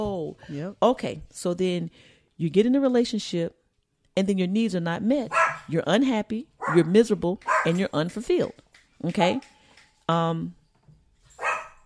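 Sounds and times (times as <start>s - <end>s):
speech: 0.0s - 3.6s, 4.2s - 10.6s
dog barking: 5.3s - 5.7s, 6.6s - 7.8s, 11.4s - 11.8s.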